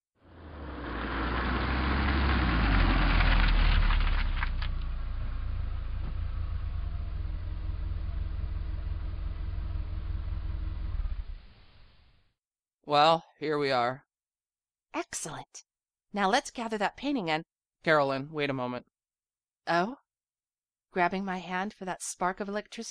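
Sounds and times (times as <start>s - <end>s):
car engine idling while parking: 0.2s - 12.0s
speech: 12.9s - 14.1s, 14.9s - 18.9s, 19.7s - 20.0s, 20.9s - 22.8s.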